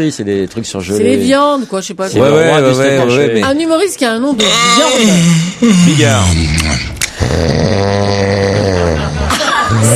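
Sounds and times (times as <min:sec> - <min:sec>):
speech: 0:00.0 - 0:09.1
loud snore: 0:04.4 - 0:09.9.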